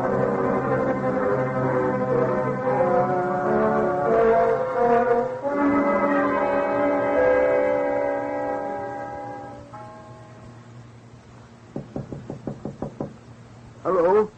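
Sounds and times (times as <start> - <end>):
sustained musical tone: 0.0 - 11.2
sharp knocks on a door: 11.8 - 13.2.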